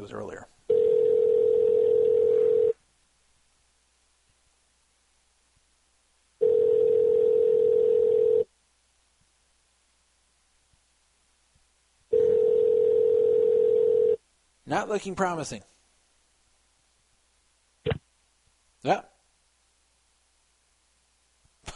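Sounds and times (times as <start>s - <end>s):
speech: 0.0s - 0.6s, 14.7s - 15.8s, 18.8s - 19.1s
telephone ringback tone on outgoing call to a business: 0.7s - 2.8s, 6.4s - 8.5s, 12.1s - 14.2s.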